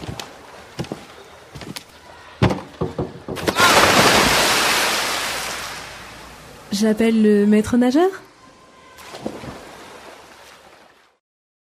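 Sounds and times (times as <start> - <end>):
sharp knocks: 2.4 - 3.6
splash of someone jumping into a pool from a high diving board: 3.4 - 5.8, 9.0 - 10.8
speech: 6.7 - 8.3.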